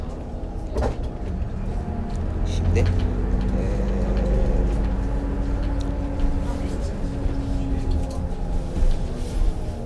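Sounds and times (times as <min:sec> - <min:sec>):
rattles and clunks from the bus cabin: 0:00.0 - 0:09.6
airport shuttle bus low engine rumble: 0:00.0 - 0:09.8
speech: 0:02.8 - 0:03.1.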